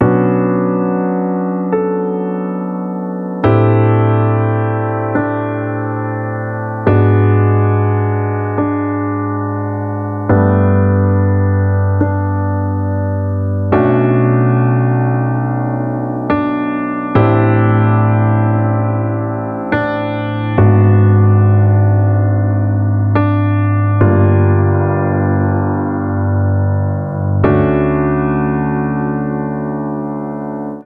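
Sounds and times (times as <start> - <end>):
piano intro in D major and B minor at 140 BPM: 0.0 - 30.8.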